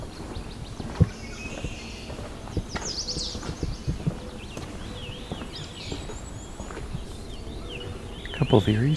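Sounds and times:
black-and-white warbler singing high ringing phrases: 0.0s - 8.9s
low knocks and rustling thuds: 2.5s - 7.1s
speech: 8.5s - 8.9s.

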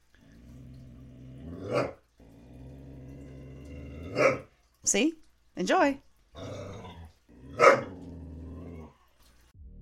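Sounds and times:
dog growling and snarling: 0.0s - 4.5s, 6.4s - 9.1s
speech: 4.8s - 6.0s.

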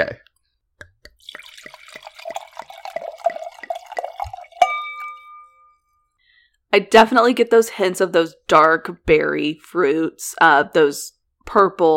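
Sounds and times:
wine glugging and splashing into a glass: 1.1s - 5.5s
bright ringing clink of glass: 1.3s - 5.9s
speech: 6.8s - 11.9s.

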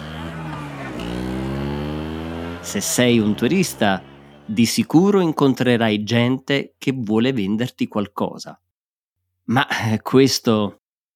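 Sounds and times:
faint street chatter in Naples, Italy: 0.0s - 4.9s
small motor scooter engine passing in the Spaccanapoli street of Naples, Italy: 0.0s - 5.0s
speech: 2.6s - 8.6s, 9.5s - 10.8s.

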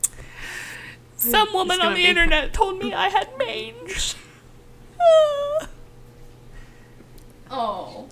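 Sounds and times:
speech: 1.2s - 4.2s, 5.0s - 5.7s, 7.5s - 8.1s
dog whining for attention: 5.0s - 5.8s.

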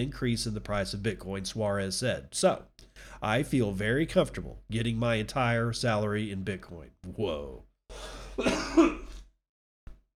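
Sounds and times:
speech: 0.0s - 9.0s
harsh throaty cough: 8.1s - 9.2s.

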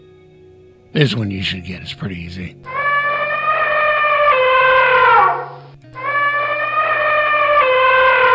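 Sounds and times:
speech: 0.9s - 2.8s
elephant trumpeting: 2.7s - 8.3s.

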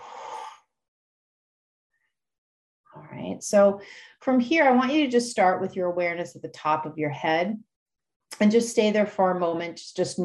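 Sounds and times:
group exhaling through open mouths after a deep breath in: 0.0s - 0.7s
speech: 3.1s - 7.7s, 8.3s - 10.2s.

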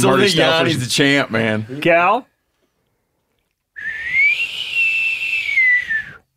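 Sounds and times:
speech: 0.0s - 2.3s
breathy windy human whistle: 3.8s - 6.3s.

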